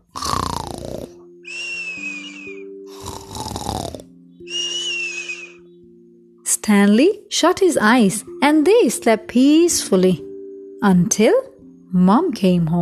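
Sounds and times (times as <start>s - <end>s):
grandfather snoring with whistling breath out: 0.0s - 5.6s
speech: 6.7s - 12.7s.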